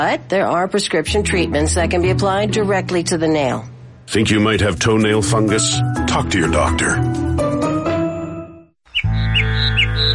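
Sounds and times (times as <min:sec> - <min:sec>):
speech: 0:00.0 - 0:07.3
birds chirping and squawking: 0:08.8 - 0:10.1.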